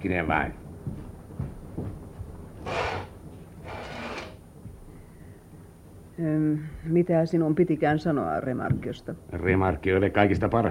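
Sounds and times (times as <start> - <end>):
speech: 0.0 - 1.0, 6.2 - 10.6
ventilation valve being closed against a chilly night draft: 2.6 - 4.4.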